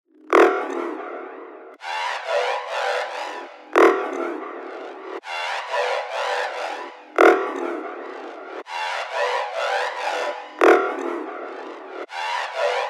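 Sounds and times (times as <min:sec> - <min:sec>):
effects loop: 0:00.2 - 0:12.8.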